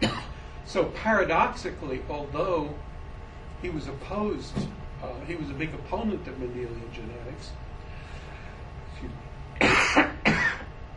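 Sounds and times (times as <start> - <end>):
dry raspy coughs from a dry throat: 0.0 - 0.4, 9.6 - 10.7
speech: 0.7 - 2.9, 3.6 - 7.6, 9.0 - 9.3.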